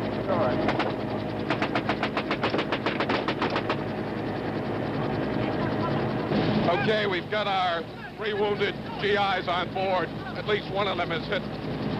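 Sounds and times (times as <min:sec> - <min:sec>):
helicopter rotor drone: 0:00.0 - 0:11.9
machine-gun fire from a helicopter crew returning fire: 0:00.7 - 0:03.8
speech: 0:06.8 - 0:11.8.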